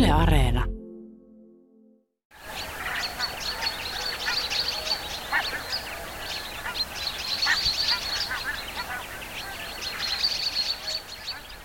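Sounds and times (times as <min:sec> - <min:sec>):
speech: 0:00.1 - 0:00.7
large flock of geese honking: 0:02.5 - 0:11.6.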